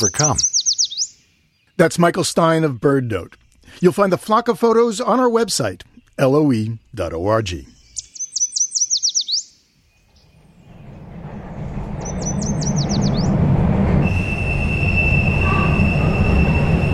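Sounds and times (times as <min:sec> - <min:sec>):
speech: 0:00.0 - 0:00.5, 0:01.8 - 0:07.8
birds chirping: 0:00.0 - 0:16.9
subway train rumbling into Harvard Square: 0:10.0 - 0:16.9.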